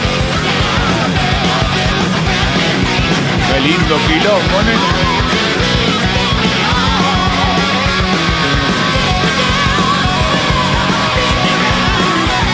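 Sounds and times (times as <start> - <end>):
distorted guitars: 0.0 - 12.5
loud dense rock track: 0.0 - 12.5
speech: 3.6 - 5.4.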